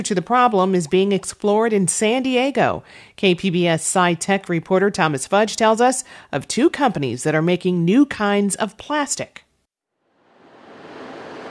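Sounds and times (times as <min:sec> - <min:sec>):
speech: 0:00.0 - 0:09.4
ocean surf rushing in at a beach in Encinitas: 0:10.2 - 0:11.4.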